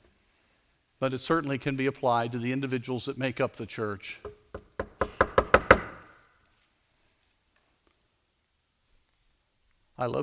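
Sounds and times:
speech: 1.0 - 4.4, 10.0 - 10.2
firm knocks on a wooden door: 4.2 - 6.1.

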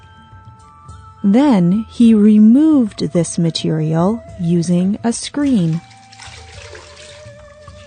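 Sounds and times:
speech: 1.2 - 5.9
water sloshing and splashing inside a large container: 5.4 - 7.8.

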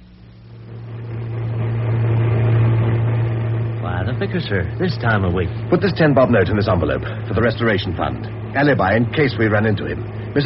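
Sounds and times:
car engine revving and pulling away: 0.6 - 10.4
speech: 4.2 - 10.4.

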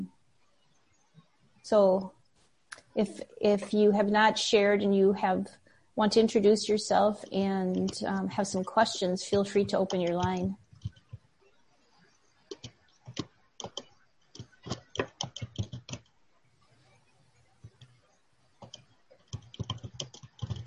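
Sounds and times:
faint low hum: 0.0 - 20.6
speech: 1.7 - 2.2, 3.0 - 10.6
typing on a computer keyboard: 7.6 - 11.2, 12.5 - 16.1, 18.6 - 20.6.

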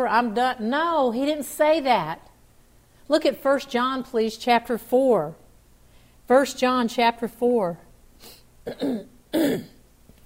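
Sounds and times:
speech: 0.0 - 2.3, 3.1 - 5.4, 6.3 - 9.8
person clearing a throat irritated by pollen: 8.6 - 9.8.

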